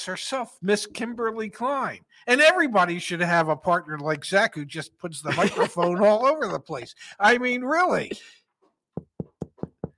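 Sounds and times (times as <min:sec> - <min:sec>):
speech: 0:00.0 - 0:08.4
laughter: 0:05.1 - 0:08.2
sharp knocks on a door: 0:09.0 - 0:09.9.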